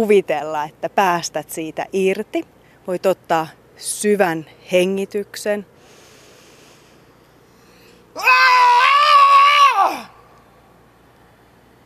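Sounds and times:
speech: 0:00.0 - 0:05.7, 0:08.2 - 0:08.4
person screaming to release stress: 0:08.2 - 0:10.2.

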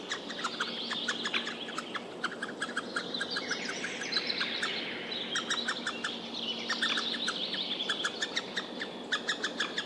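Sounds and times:
White-backed Woodpecker nestlings begging: 0:00.0 - 0:09.8.

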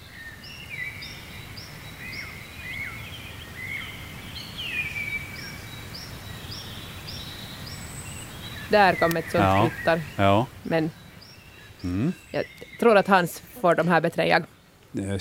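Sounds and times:
wood warbler song: 0:00.0 - 0:14.8
faint bird calls: 0:08.2 - 0:14.6
speech: 0:08.7 - 0:11.0, 0:11.8 - 0:15.1.

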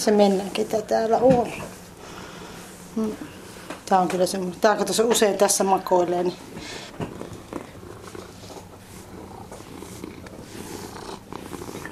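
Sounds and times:
speech: 0:00.0 - 0:01.8, 0:03.0 - 0:07.1
cat purring: 0:06.8 - 0:11.8.

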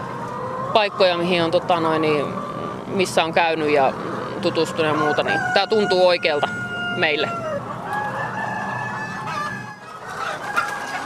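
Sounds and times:
chickens clucking in an organic henhouse in Lappeenranta: 0:00.0 - 0:11.0
speech: 0:00.8 - 0:07.4
chicken squawks in an organic henhouse in Lappeenranta: 0:04.9 - 0:11.0.

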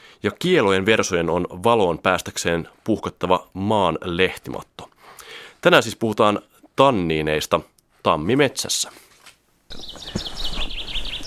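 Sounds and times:
speech: 0:00.2 - 0:04.9, 0:05.6 - 0:09.1, 0:09.7 - 0:10.4
common chaffinch singing from an oak branch in a spring oak grove: 0:09.7 - 0:11.2.

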